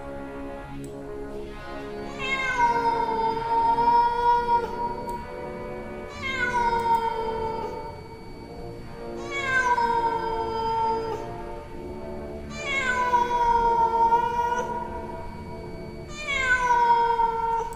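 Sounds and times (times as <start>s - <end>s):
cat yowling: 2.1s - 5.1s, 6.1s - 8.1s, 9.2s - 11.3s, 12.5s - 15.1s, 16.1s - 17.7s.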